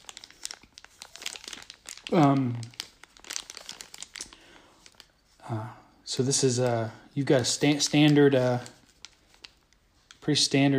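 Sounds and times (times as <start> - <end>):
packaging crinkling and rustling as a box is opened: 0.0 - 5.4, 6.0 - 10.7
speech: 2.1 - 2.7, 5.5 - 8.8, 10.3 - 10.7.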